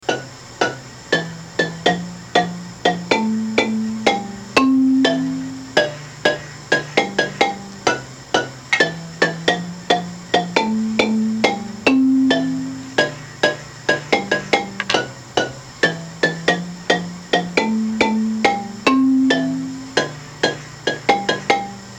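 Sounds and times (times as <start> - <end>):
bouncy baritone marimba: 1.2 - 21.9.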